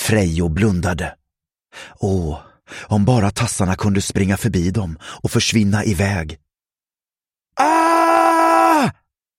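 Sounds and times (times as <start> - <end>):
speech: 0.1 - 6.4, 7.6 - 7.9, 8.8 - 9.0
loud anguished scream of pain: 7.6 - 9.0.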